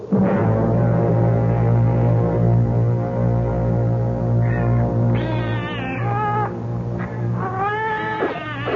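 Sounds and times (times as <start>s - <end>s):
loud low hum: 0.0s - 7.4s
several hungry cats meowing while being fed: 4.4s - 8.7s.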